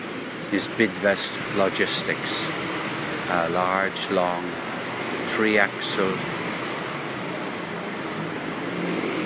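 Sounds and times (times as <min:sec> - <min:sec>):
city bus engine and road roar in street traffic: 0:00.0 - 0:09.2
speech: 0:00.5 - 0:04.6, 0:05.3 - 0:06.4.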